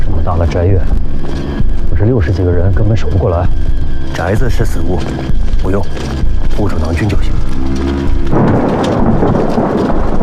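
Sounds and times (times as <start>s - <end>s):
loud roll of thunder rumbling before rain: 0.0s - 10.2s
speech: 0.4s - 1.1s, 2.1s - 9.1s.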